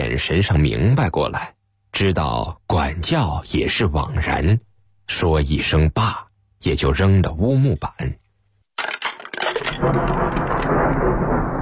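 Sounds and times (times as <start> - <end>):
speech: 0.2 - 8.2, 9.8 - 10.5
thunder on a windy night: 9.7 - 11.6.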